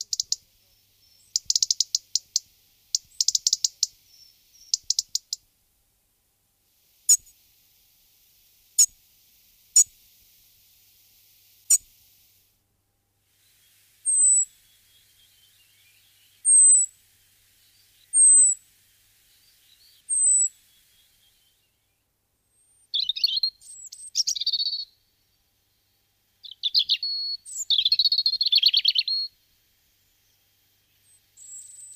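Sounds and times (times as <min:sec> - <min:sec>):
European robin Erithacus rubecula singing: 0:00.0 - 0:05.5, 0:07.0 - 0:07.4, 0:13.5 - 0:29.4, 0:30.2 - 0:31.9.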